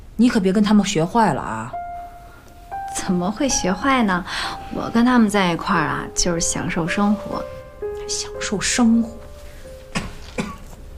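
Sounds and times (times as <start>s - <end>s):
speech: 0.2s - 1.8s, 3.1s - 9.2s
person coughing: 9.9s - 10.8s.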